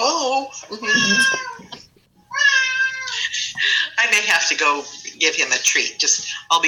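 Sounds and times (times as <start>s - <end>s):
speech: 0.3s - 1.7s, 4.3s - 6.6s
cat meowing: 0.8s - 1.7s, 2.3s - 3.2s.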